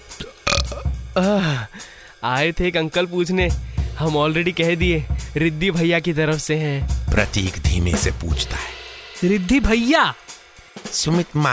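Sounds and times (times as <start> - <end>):
person burping: 0.2 - 1.7
speech: 1.2 - 10.2, 10.9 - 11.5.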